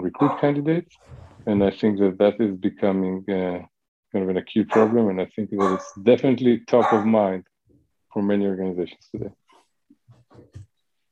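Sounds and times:
schnauzer dogs barking in background: 0:00.0 - 0:00.6, 0:04.7 - 0:06.0, 0:06.7 - 0:07.3
speech: 0:00.2 - 0:07.5, 0:08.1 - 0:09.4.

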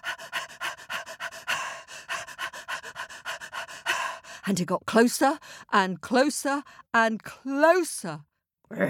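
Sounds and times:
dog panting: 0:00.0 - 0:04.4
speech: 0:04.4 - 0:08.8.

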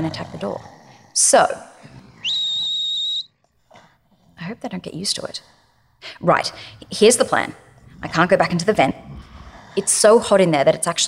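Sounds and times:
speech: 0:00.0 - 0:02.0, 0:04.4 - 0:09.0, 0:09.8 - 0:11.0
long shrill whistle blast: 0:02.2 - 0:03.3.

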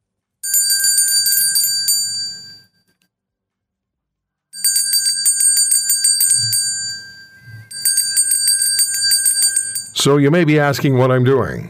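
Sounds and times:
bells ringing: 0:00.4 - 0:02.6, 0:04.6 - 0:10.1
speech: 0:10.0 - 0:11.6.

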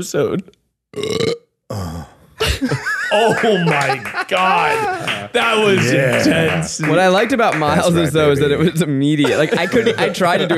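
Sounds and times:
speech: 0:00.0 - 0:01.9, 0:02.6 - 0:10.5
burp stretched into a moaning voiced groan: 0:01.0 - 0:02.3
laughter: 0:02.4 - 0:10.5.

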